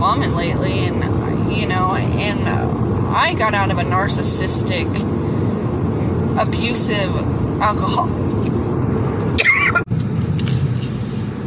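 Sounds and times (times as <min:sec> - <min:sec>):
steady rumbling noise: 0:00.0 - 0:11.4
speech: 0:00.1 - 0:05.2, 0:06.4 - 0:08.3
short harsh coughing fit: 0:09.4 - 0:09.8.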